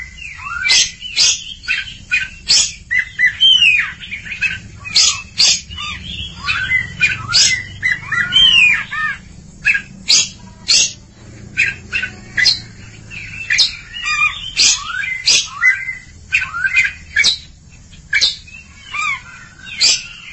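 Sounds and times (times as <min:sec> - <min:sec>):
Oriental magpie-robin song: 0:00.0 - 0:20.3.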